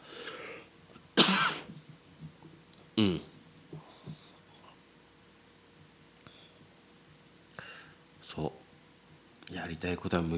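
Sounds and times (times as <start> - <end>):
person coughing: 1.2 - 1.8
speech: 3.0 - 3.3, 9.6 - 10.3.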